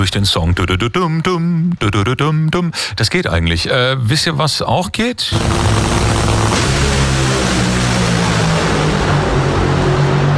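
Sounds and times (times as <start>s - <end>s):
speech: 0.0s - 6.9s
10,000 horsepower dragster race cars roaring at a drag-racing event: 5.3s - 10.3s.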